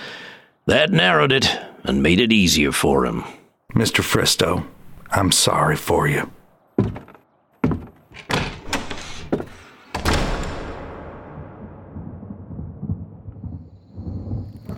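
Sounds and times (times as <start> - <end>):
speech: 0.7 - 7.0
sharp cracks of thunder: 10.2 - 14.7.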